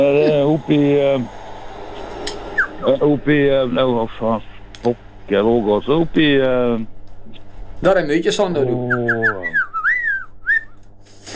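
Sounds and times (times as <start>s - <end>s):
speech: 0.0s - 1.4s, 2.8s - 9.6s
person whistling: 9.3s - 10.8s.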